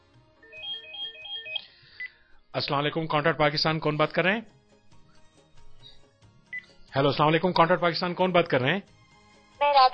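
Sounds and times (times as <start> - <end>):
faint electronic telephone ringtone of repeating melodic tones: 0.4 - 1.8
speech: 2.6 - 4.6, 7.0 - 9.0, 9.6 - 9.9.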